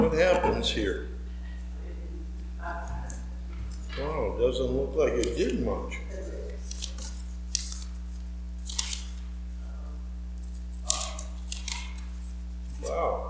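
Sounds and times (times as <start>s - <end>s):
laughter: 0.0s - 1.1s
steady low electrical hum: 0.0s - 13.2s
speech: 0.1s - 1.2s, 4.0s - 6.0s
scissors cutting paper: 5.1s - 5.7s, 6.5s - 8.0s, 8.6s - 9.2s, 10.4s - 12.9s.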